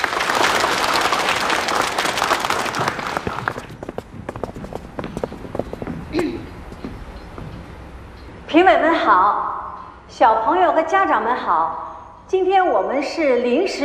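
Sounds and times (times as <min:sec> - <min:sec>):
audience applause at a children's performance event: 0:00.0 - 0:05.0
speech: 0:08.6 - 0:09.4, 0:10.2 - 0:13.8.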